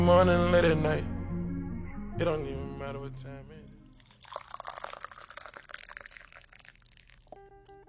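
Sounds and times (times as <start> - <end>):
speech: 0.0 - 1.2, 2.2 - 3.6
hot tea being poured: 3.8 - 7.8.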